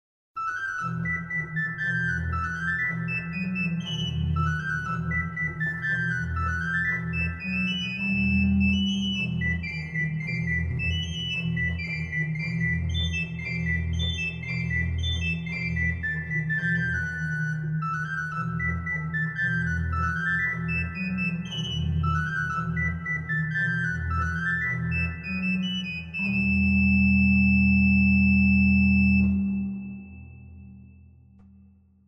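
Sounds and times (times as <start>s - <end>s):
doublette organ stop with reverb: 0.4s - 31.3s.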